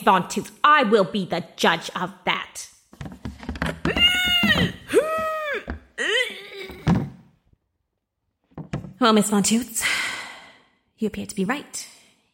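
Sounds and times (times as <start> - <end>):
speech: 0.0 - 2.8, 9.0 - 10.2, 11.0 - 11.9
pink plastic Tupperware container lid pressed, squeaky bursts of air: 3.0 - 6.0.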